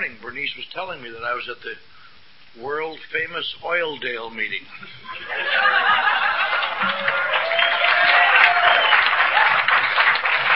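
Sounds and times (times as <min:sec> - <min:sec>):
speech: 0:00.4 - 0:02.0, 0:02.6 - 0:06.1
laughter: 0:04.7 - 0:08.6
room full of people applauding: 0:05.5 - 0:10.5.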